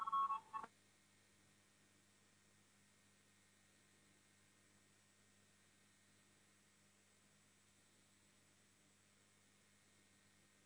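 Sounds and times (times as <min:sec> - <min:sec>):
electronic voting bell beeps in a parliament chamber: 0:00.0 - 0:00.7.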